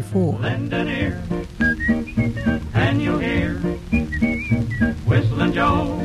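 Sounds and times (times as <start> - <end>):
steady instrumental accompaniment: 0.4 - 6.0
whistling a bright melodic tune from a 1934 song recording: 1.2 - 6.0.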